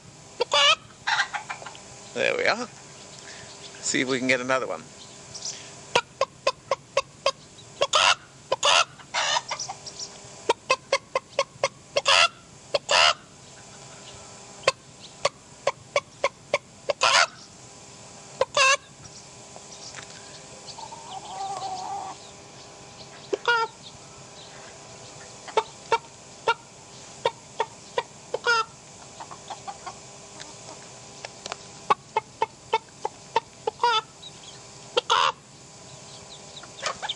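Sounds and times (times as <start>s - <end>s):
chickens with white tail feathers and light brown heads clucking: 0.3s - 17.6s, 18.3s - 37.1s
soft drawn-out chicken squawk: 0.4s - 1.8s, 5.4s - 14.8s, 15.6s - 17.5s, 18.4s - 18.9s, 20.7s - 22.3s, 23.1s - 23.8s, 24.5s - 30.0s, 31.9s - 35.4s, 36.5s - 37.1s
speech: 2.2s - 2.8s, 3.9s - 5.0s.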